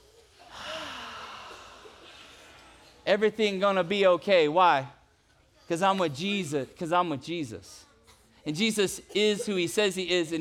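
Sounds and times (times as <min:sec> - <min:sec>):
deep breath in and out: 0:00.4 - 0:03.0
speech: 0:03.1 - 0:05.0, 0:05.7 - 0:10.3.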